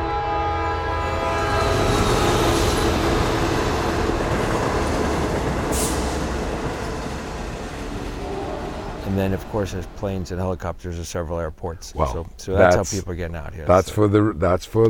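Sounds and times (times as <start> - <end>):
sustained train horn tone: 0.0 - 4.7, 7.5 - 10.4
train passing with heavy steady rail rumble: 0.0 - 10.6
speech: 9.2 - 14.8.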